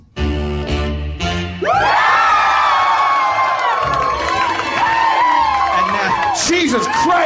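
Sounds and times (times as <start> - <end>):
music: 0.0 - 7.2
live audience cheering and whooping: 1.6 - 7.2.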